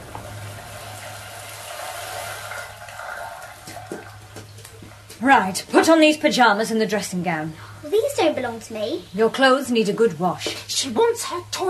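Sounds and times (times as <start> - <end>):
shower water running: 0.0 - 4.5
low hum: 0.0 - 7.9
speech: 5.2 - 11.6.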